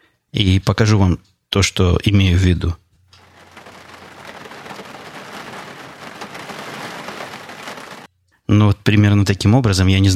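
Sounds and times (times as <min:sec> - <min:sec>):
speech: 0:00.4 - 0:02.8, 0:08.7 - 0:10.1
hail pattering on a windowsill: 0:03.1 - 0:08.1.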